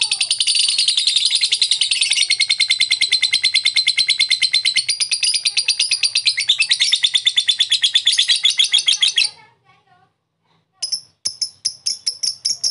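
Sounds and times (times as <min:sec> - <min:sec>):
lovebird long chatter: 0:00.0 - 0:09.4, 0:10.8 - 0:12.6.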